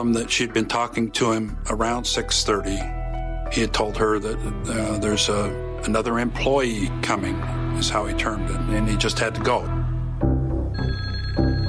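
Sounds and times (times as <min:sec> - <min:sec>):
speech: 0:00.0 - 0:09.7
telephone ringing with a bright electronic tone: 0:10.7 - 0:11.6.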